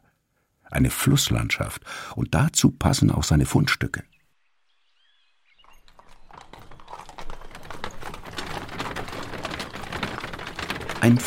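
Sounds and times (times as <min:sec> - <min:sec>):
speech: 0:00.7 - 0:04.1, 0:11.0 - 0:11.2
horse hooves clip-clopping as a rider travels: 0:05.1 - 0:11.2.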